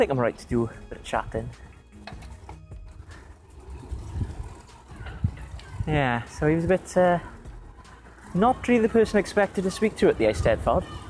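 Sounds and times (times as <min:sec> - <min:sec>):
speech: 0:00.0 - 0:01.7, 0:05.9 - 0:07.3, 0:08.3 - 0:11.0
steady road noise: 0:00.0 - 0:11.0
car passing on a quiet road: 0:02.2 - 0:11.0.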